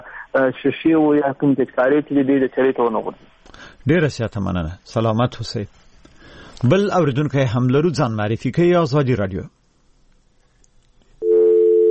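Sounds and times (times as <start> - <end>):
speech: 0.4 - 5.8, 6.6 - 9.6
telephone busy tone after a call is cut off: 11.2 - 11.8.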